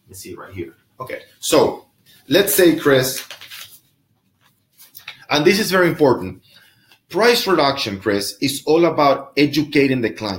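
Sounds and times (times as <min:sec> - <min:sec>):
speech: 0:00.1 - 0:03.4, 0:05.3 - 0:06.4, 0:07.1 - 0:10.3
paper rustling: 0:02.2 - 0:05.5.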